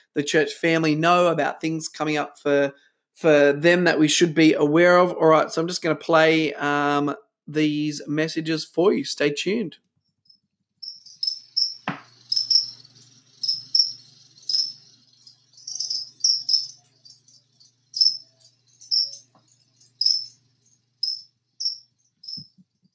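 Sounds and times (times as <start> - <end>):
speech: 0.2 - 9.9
live crickets chirping: 10.3 - 22.7.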